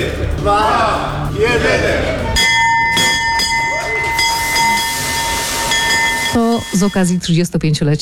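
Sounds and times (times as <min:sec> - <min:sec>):
noisy bustling background: 0:00.0 - 0:08.0
speech: 0:00.4 - 0:02.1, 0:06.7 - 0:08.0
stock exchange opening bell ringing to open the trading session: 0:02.2 - 0:07.4.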